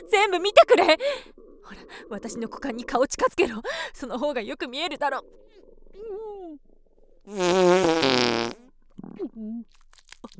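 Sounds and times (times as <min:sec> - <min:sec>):
speech: 0:00.1 - 0:10.3
loud drawn-out buzzy rasping fart: 0:07.3 - 0:09.2.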